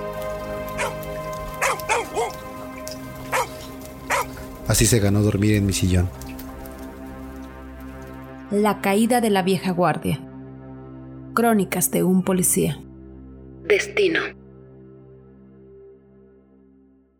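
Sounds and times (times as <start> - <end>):
steady rain falling: 0.0 - 8.4
stray dog barking: 0.8 - 1.0, 1.6 - 2.4, 3.3 - 4.4
speech: 4.7 - 6.2, 8.5 - 10.2, 11.4 - 12.9, 13.7 - 14.4.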